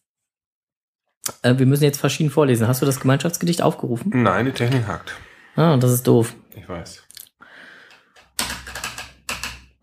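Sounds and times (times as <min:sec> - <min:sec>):
speech: 0:01.4 - 0:07.1
typing on a computer keyboard: 0:08.2 - 0:09.7.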